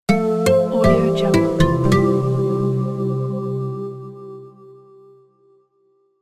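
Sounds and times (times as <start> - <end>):
acoustic guitar logo jingle: 0.2 - 2.8.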